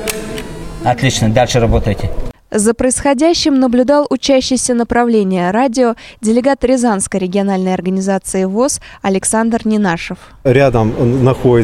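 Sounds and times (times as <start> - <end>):
biathlon rifle shot clicks during a training session: 0.0 - 0.6
speech: 0.8 - 11.6.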